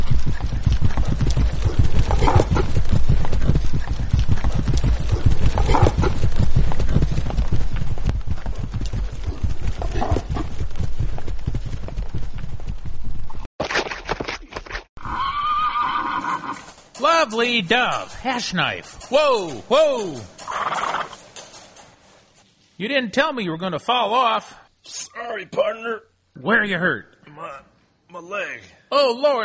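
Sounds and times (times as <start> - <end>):
horses galloping: 0.0 - 13.5, 15.3 - 22.4
horse whinnying: 15.0 - 16.8, 20.4 - 21.2
speech: 17.3 - 20.3, 22.8 - 29.4.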